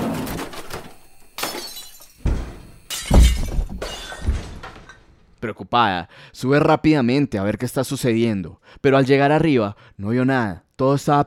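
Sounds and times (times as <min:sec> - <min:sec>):
debris clattering and settling: 0:00.0 - 0:05.2
windows shattering: 0:01.4 - 0:05.1
speech: 0:05.4 - 0:11.2.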